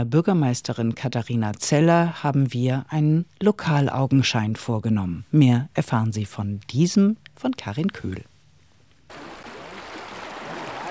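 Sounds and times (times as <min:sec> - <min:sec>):
speech: 0:00.0 - 0:08.3
water splashing and babbling: 0:09.1 - 0:10.9.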